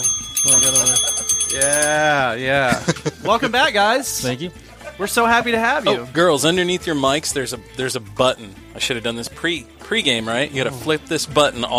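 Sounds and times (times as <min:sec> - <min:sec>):
bright metallic bell rung in a studio: 0:00.0 - 0:02.5
speech: 0:00.0 - 0:11.7
laughter: 0:02.5 - 0:06.1.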